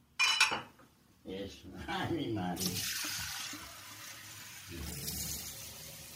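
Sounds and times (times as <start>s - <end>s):
speech: 1.2s - 3.7s
water splashing and pouring: 2.6s - 6.1s.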